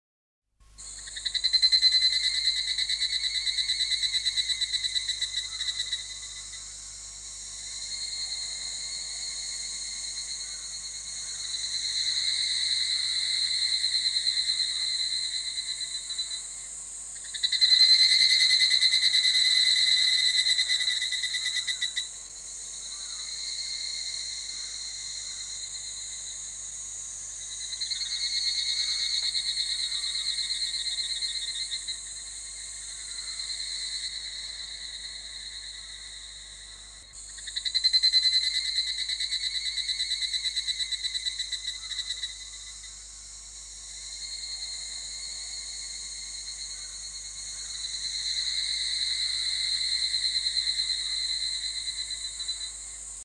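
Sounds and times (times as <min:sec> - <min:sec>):
Tanna japonensis cicada calling: 0:00.8 - 0:53.2.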